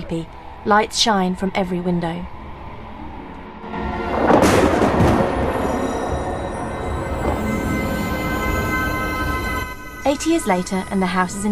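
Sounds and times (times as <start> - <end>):
speech: 0.1 - 2.4, 10.1 - 11.4
thunder from a lightning strike outside a large old house: 3.6 - 11.4.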